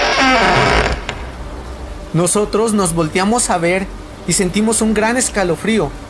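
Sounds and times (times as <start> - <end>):
door creaking open slowly: 0.0 - 1.4
speech: 2.1 - 6.0.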